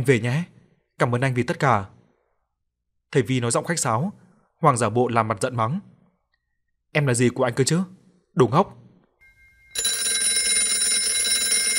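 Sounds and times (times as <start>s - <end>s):
speech: 0.0s - 2.0s, 3.1s - 5.9s, 6.9s - 8.8s
telephone ringing insistently: 9.2s - 11.7s.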